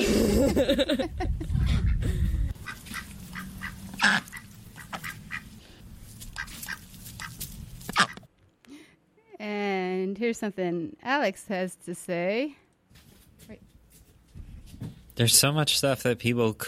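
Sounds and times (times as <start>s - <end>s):
speech: 0.5s - 2.2s, 10.3s - 12.6s, 13.5s - 13.7s, 14.8s - 16.6s
flock of ducks quacking: 1.6s - 5.6s, 6.3s - 8.3s
loud honking squawks of ducks: 2.6s - 5.5s, 6.3s - 8.3s.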